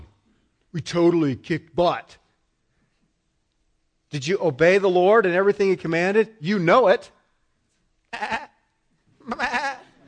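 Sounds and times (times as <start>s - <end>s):
speech: 0.7s - 2.2s, 4.1s - 7.2s, 8.1s - 8.4s
sheep bleating: 8.2s - 8.6s, 9.2s - 10.0s.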